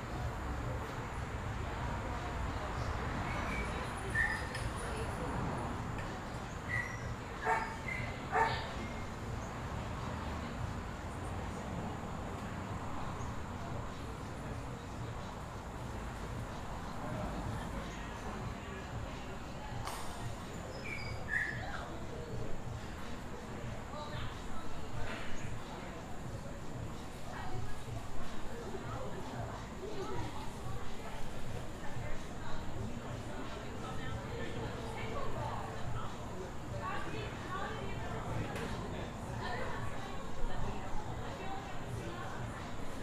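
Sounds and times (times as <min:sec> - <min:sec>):
low traffic rumble: 0:00.0 - 0:43.0
patio chatter at a brewery: 0:00.0 - 0:43.0
dog barking: 0:07.4 - 0:08.7.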